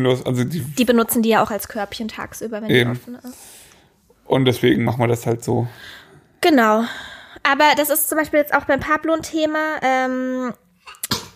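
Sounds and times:
speech: 0:00.0 - 0:03.6, 0:04.3 - 0:11.1
person sneezing: 0:10.9 - 0:11.3.

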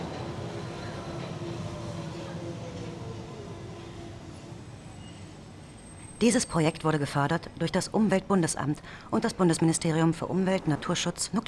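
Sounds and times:
train rolling into a station: 0:00.0 - 0:11.4
faint high squeal of a train: 0:03.8 - 0:06.7
speech: 0:06.2 - 0:11.4.

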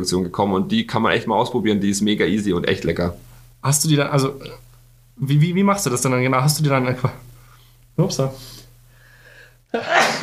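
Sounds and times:
speech: 0:00.0 - 0:04.6, 0:05.2 - 0:07.3, 0:08.0 - 0:08.6, 0:09.7 - 0:10.2
sneeze: 0:09.8 - 0:10.2.

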